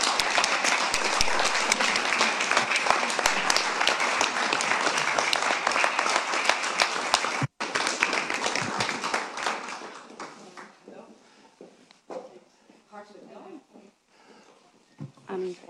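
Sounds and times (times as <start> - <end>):
audience applause welcoming a woman speaker: 0.0 - 10.8.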